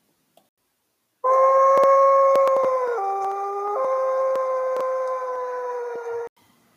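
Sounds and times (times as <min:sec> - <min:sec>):
wolf howling in a dark part of a forest: 0:01.2 - 0:06.3.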